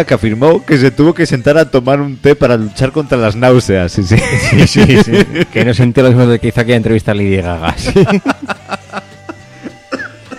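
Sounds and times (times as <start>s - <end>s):
speech: 0.0s - 9.1s
laughter: 4.0s - 6.0s, 7.6s - 10.3s
person coughing: 9.9s - 10.3s.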